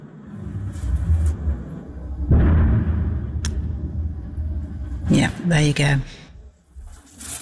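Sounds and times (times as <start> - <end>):
low rumble: 0.0 - 7.0
distant missile explosion boom: 2.2 - 5.1
speech: 5.1 - 6.2.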